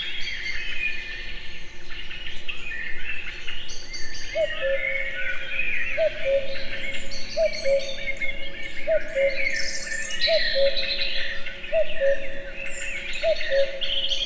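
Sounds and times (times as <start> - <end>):
chorus of twittering songbirds in a forest in Hungary: 0.0 - 14.2
Common cuckoo calling a low two-note cu-coo in a forest in Hungary: 4.4 - 14.2.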